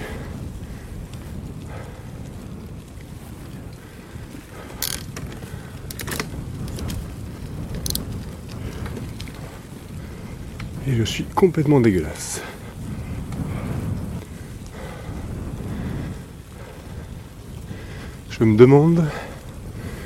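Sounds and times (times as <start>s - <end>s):
headwind buffeting the microphone: 0.0s - 20.0s
speech: 10.9s - 12.6s, 18.4s - 19.3s.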